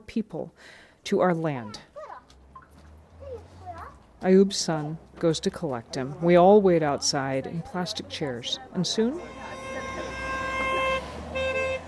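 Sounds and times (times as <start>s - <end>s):
speech: 0.2s - 1.9s, 4.2s - 9.6s
car horn honking in celebration: 8.8s - 11.8s.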